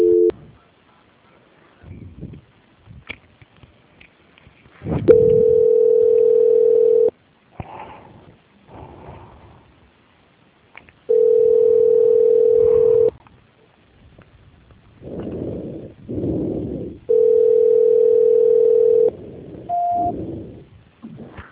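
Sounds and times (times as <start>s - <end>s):
telephone line long beeps during call transfer: 0.0s - 0.3s, 5.1s - 7.1s, 11.1s - 13.1s, 17.1s - 19.1s, 19.7s - 20.2s.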